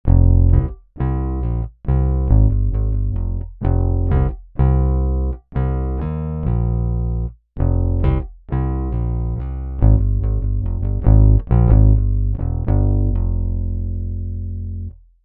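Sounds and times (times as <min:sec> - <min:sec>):
bass guitar: 0:00.0 - 0:15.0.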